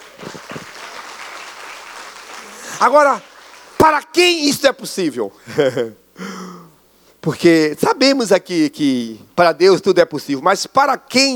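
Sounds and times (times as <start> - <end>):
crowd applause: 0.0 - 3.8
louder individual claps: 0.0 - 3.8
speech: 2.8 - 6.0, 7.2 - 11.3
laughter: 5.4 - 6.0.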